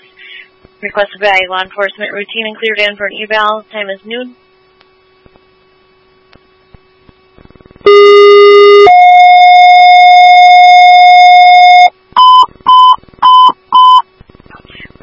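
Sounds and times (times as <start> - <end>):
speech: 0.8 - 4.4
short evenly spaced dispatch beeps: 7.9 - 14.0
two-tone fire and ambulance dispatch paging tones: 7.9 - 14.0.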